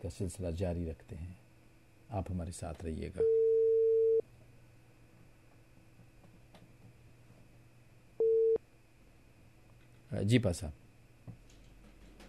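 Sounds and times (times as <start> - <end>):
speech: 0.0 - 1.4, 2.1 - 3.4, 10.2 - 10.8
faint hum: 0.0 - 12.2
low noise: 0.0 - 12.2
long telephone tone while redialing a dropped call: 3.2 - 4.2, 8.2 - 8.6.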